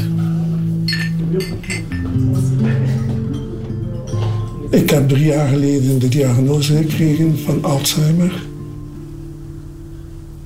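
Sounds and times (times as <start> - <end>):
wine glasses clinking in a toast: 0.8 - 7.1
speech: 4.7 - 8.5.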